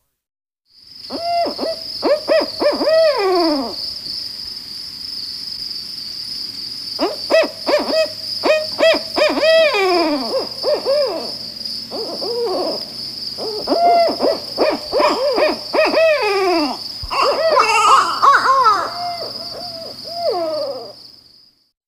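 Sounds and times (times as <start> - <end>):
steady high insect buzz: 0.8 - 21.7
barred owl hooting: 1.1 - 3.8, 7.0 - 21.0.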